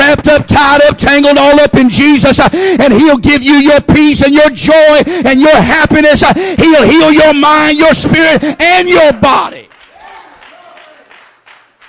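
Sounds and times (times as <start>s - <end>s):
speech: 0.1s - 9.7s
audience clapping: 9.7s - 11.8s.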